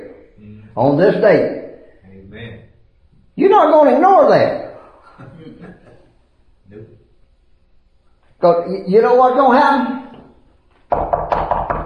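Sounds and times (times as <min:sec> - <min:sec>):
speech: 0:00.8 - 0:01.6, 0:03.4 - 0:04.6, 0:08.4 - 0:10.0
laughter: 0:04.8 - 0:06.1
firm knocks on a door: 0:10.9 - 0:11.8.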